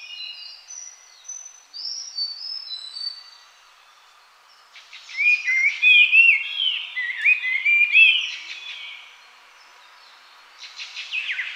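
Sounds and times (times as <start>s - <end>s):
Sulawesi Babbler whistling song: 0.0s - 3.4s, 4.8s - 9.1s, 10.6s - 11.5s.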